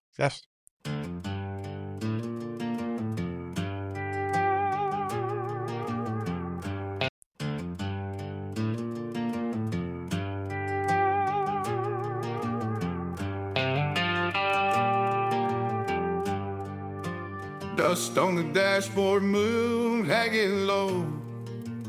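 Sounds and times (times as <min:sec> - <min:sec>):
speech: 0:00.2 - 0:01.0, 0:17.9 - 0:21.2
song's instrumental intro with sustained tones and driving beat: 0:00.9 - 0:17.8.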